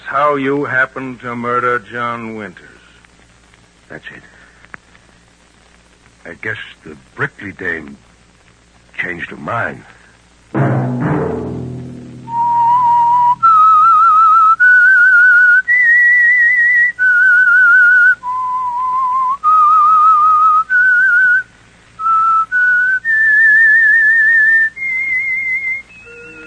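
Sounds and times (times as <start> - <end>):
speech: 0.1 - 2.8, 3.9 - 4.4, 6.2 - 8.1, 9.0 - 11.6
person whistling a melodic theme tune: 12.3 - 21.4, 22.0 - 26.4.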